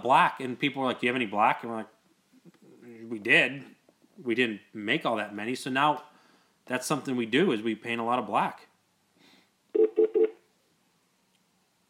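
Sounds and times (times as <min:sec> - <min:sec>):
speech: 0:00.0 - 0:02.0, 0:03.0 - 0:06.1, 0:06.7 - 0:08.7
phone ringing with incoming call: 0:09.8 - 0:10.4.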